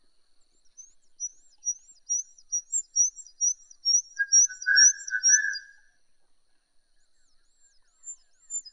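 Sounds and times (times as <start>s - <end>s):
Horsfield's bush lark singing high arched chirps: 1.2s - 5.8s.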